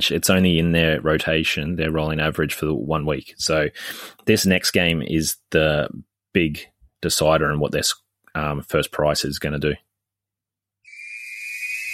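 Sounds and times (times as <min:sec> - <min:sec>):
speech: 0:00.0 - 0:09.9
shrill steady high-pitched whistle: 0:10.8 - 0:11.9.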